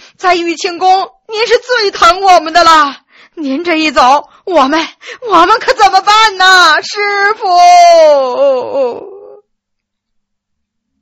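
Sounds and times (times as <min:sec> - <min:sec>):
speech: 0:00.2 - 0:09.1
person wailing in feigned grief: 0:07.4 - 0:09.4.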